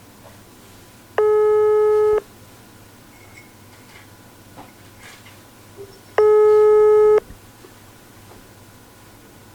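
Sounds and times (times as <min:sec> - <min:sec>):
telephone ringback tone of electronic beeps: 0:01.2 - 0:02.2, 0:06.2 - 0:07.2.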